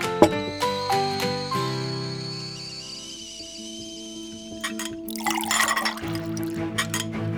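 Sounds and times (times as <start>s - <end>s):
cup clinks: 0.2s - 1.3s, 4.6s - 7.3s
tea pouring into a cup: 3.2s - 7.3s.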